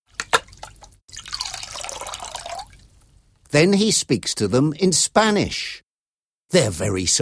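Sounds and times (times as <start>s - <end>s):
water dripping: 0.1s - 3.5s
water pouring into a container for sailors to drink: 0.4s - 3.2s
speech: 3.5s - 5.8s, 6.5s - 7.1s.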